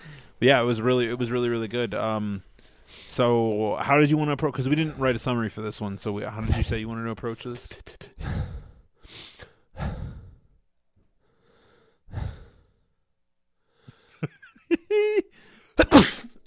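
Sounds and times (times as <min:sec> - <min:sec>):
speech: 0:00.4 - 0:08.4
heavy breathy exhales: 0:08.2 - 0:10.5, 0:11.3 - 0:12.8
sharp loud sneeze with rising voiced wind-up: 0:15.8 - 0:16.4.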